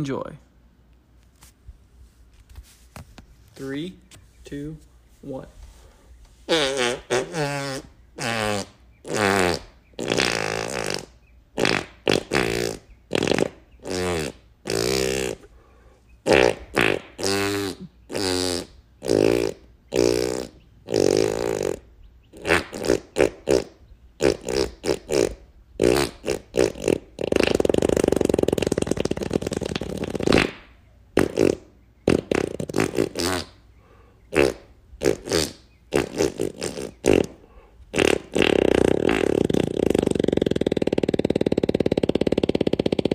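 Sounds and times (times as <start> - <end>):
speech: 0.0 - 0.5, 3.6 - 5.6, 6.5 - 9.6
fart noises performed as a song: 6.5 - 15.5, 16.2 - 33.6, 34.3 - 43.1.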